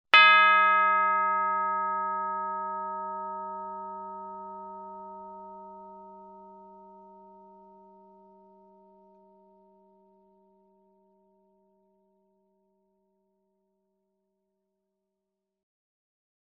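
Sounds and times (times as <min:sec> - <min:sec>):
short bell accent: 0:00.2 - 0:09.5.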